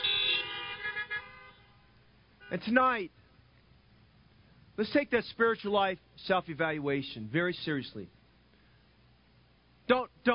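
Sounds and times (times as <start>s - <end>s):
several car horns honking: 0.0s - 3.0s
speech: 2.5s - 3.2s, 4.8s - 8.2s, 9.9s - 10.3s.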